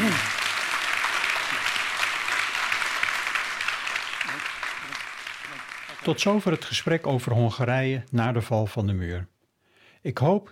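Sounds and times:
audience applause: 0.0 - 7.4
speech: 6.0 - 9.3, 10.0 - 10.4.

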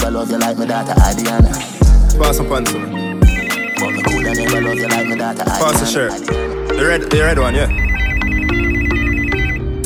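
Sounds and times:
speech: 0.1 - 3.2, 3.8 - 7.8
mobile phone ringtone: 2.9 - 9.8.

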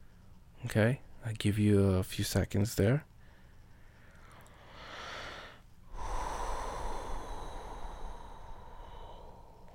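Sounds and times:
speech: 0.6 - 3.1
deep breathing during a calming exercise: 3.2 - 9.7.

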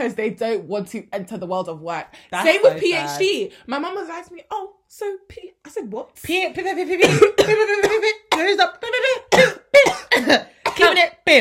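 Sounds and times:
speech: 0.0 - 11.3
person coughing harshly: 7.0 - 11.0.

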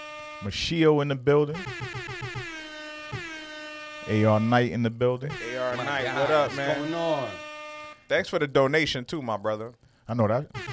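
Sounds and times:
air horn sound effect blasts: 0.0 - 0.5, 1.6 - 4.7, 5.3 - 8.1, 10.5 - 10.7
speech: 0.4 - 2.4, 4.1 - 7.4, 8.1 - 10.7.

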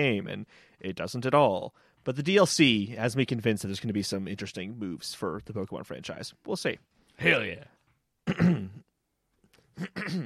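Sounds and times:
speech: 0.0 - 8.9, 9.8 - 10.2
man clearing his throat: 8.2 - 8.9, 9.8 - 10.2.

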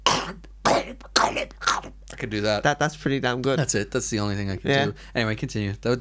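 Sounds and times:
man imitating a throaty gurgling cough: 0.0 - 2.0
speech: 0.8 - 5.9.

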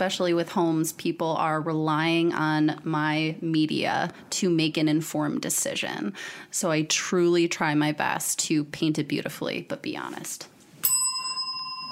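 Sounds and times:
speech: 0.0 - 10.5
single bright metallic bell ring: 10.8 - 11.9.

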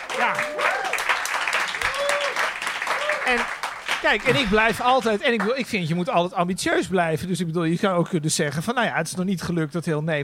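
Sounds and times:
crowd applauding: 0.0 - 6.0
voices whooping and cheering: 0.1 - 3.4
speech: 3.3 - 10.2.

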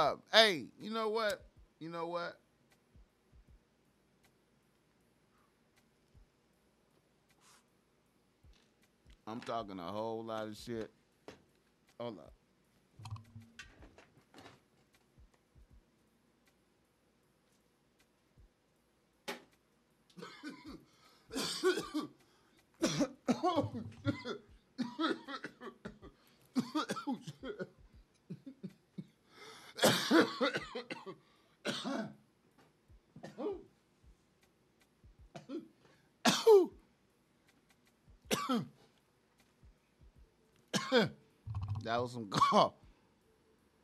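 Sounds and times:
speech: 0.0 - 2.4, 9.3 - 11.0, 12.0 - 12.4, 21.3 - 22.2, 22.8 - 25.8, 26.6 - 27.8, 29.8 - 32.2, 36.4 - 36.8, 38.4 - 38.8, 40.9 - 41.2, 41.8 - 42.8
heavy harsh chesty coughing fit: 20.2 - 22.2, 22.8 - 32.2, 33.2 - 33.7, 35.4 - 36.8, 38.3 - 38.8, 40.7 - 41.2, 42.4 - 42.7.

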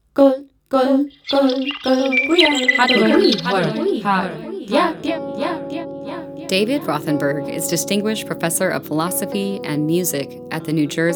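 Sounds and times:
speech: 0.2 - 5.5, 6.5 - 11.1
scratchy electronic-sounding birdsong: 1.0 - 4.9.

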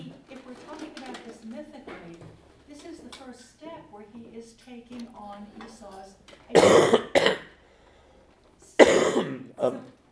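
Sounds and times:
speech: 3.9 - 7.4, 9.2 - 10.0
person coughing: 6.5 - 7.6, 8.8 - 9.9.

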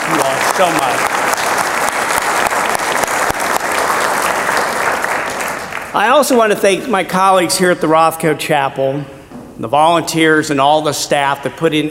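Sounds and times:
room full of people applauding: 0.0 - 6.2
speech: 0.6 - 1.2, 6.0 - 11.8.

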